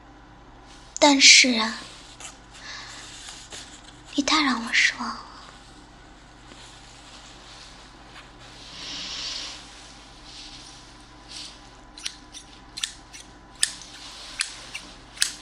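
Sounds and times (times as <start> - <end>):
speech: 1.0 - 1.9, 4.2 - 5.3
new unused scissors rustling while handled: 12.0 - 15.4.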